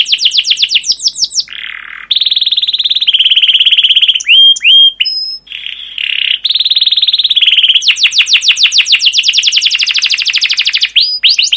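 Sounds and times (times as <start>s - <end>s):
canary song with chirps, buzzy note, trills and whistles: 0.0s - 11.5s.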